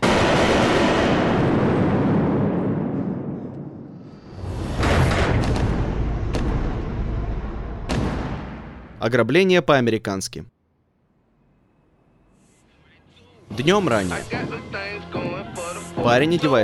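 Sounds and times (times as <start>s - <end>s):
gunshots around a corner in a film scene: 0.0s - 3.6s, 4.3s - 9.0s
speech: 9.0s - 10.5s, 13.5s - 15.3s, 16.0s - 16.6s.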